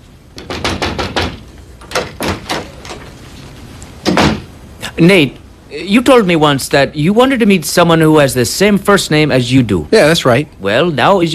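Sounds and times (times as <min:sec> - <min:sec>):
knocking on a door: 0:00.4 - 0:02.7
speech: 0:05.0 - 0:11.3.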